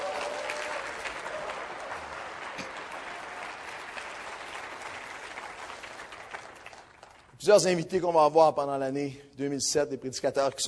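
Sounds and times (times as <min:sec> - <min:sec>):
audience applauding: 0:00.0 - 0:07.3
speech: 0:07.4 - 0:10.6.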